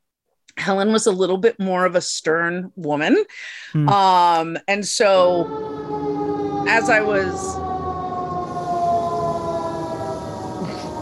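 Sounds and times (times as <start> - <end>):
speech: 0.6 - 5.8, 6.7 - 7.7
emergency vehicle siren wailing outdoors: 5.0 - 11.0.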